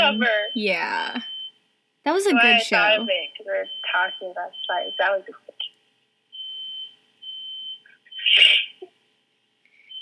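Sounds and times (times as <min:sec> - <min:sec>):
fire alarm beeping: 0:00.0 - 0:01.6, 0:02.3 - 0:05.1, 0:06.3 - 0:08.2, 0:09.8 - 0:10.0
speech: 0:00.1 - 0:01.3, 0:02.0 - 0:05.4, 0:08.3 - 0:08.7.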